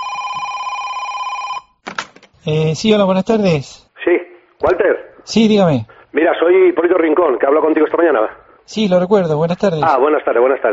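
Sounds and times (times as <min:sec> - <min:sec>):
telephone ringing with a steady electronic tone: 0:00.0 - 0:01.8
speech: 0:02.4 - 0:10.7.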